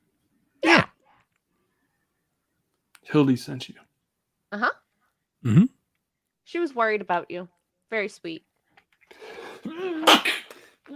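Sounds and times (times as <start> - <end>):
person sneezing in character during a tabletop role-playing game: 0.6 - 1.0, 9.3 - 10.8
speech: 3.1 - 3.9, 4.5 - 4.8, 5.4 - 5.8, 6.5 - 8.5.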